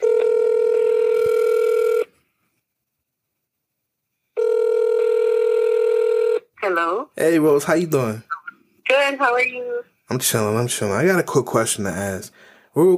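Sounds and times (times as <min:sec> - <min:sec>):
telephone electronic ring tones on the line: 0:00.0 - 0:02.1, 0:04.4 - 0:06.8
speech: 0:06.6 - 0:08.3, 0:09.0 - 0:12.9.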